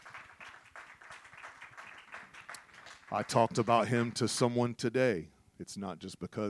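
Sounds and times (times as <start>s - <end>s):
church audience clapping: 0.0s - 4.3s
speech: 3.1s - 6.4s.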